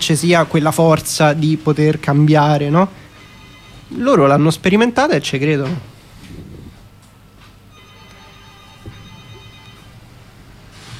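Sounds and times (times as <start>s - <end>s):
speech: 0.0s - 3.0s, 3.9s - 5.9s
low hum: 0.0s - 10.9s
electronic phone ringing tone: 3.1s - 4.2s, 7.7s - 10.2s.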